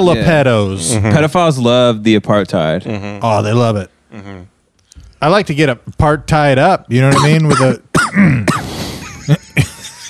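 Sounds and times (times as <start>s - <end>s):
speech: 0.0s - 4.5s, 5.2s - 8.7s
person coughing: 7.1s - 9.3s.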